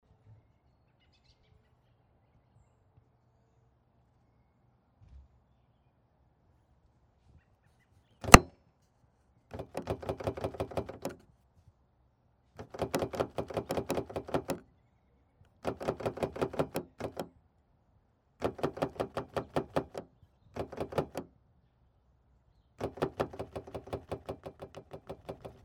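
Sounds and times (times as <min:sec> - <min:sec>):
locked car door handle pulled: 0:08.2 - 0:08.5, 0:09.6 - 0:11.2, 0:12.6 - 0:14.6, 0:15.6 - 0:17.3, 0:18.4 - 0:20.0, 0:20.6 - 0:21.3, 0:22.8 - 0:25.6.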